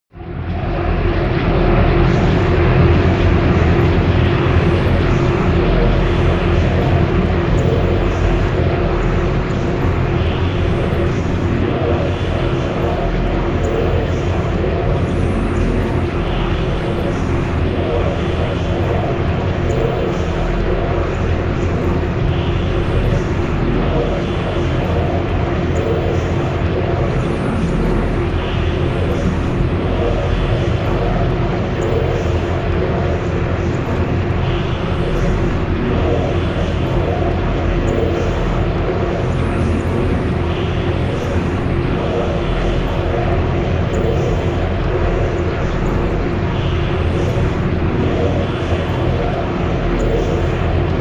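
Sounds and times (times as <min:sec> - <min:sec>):
drone noise: 0:00.1 - 0:50.9.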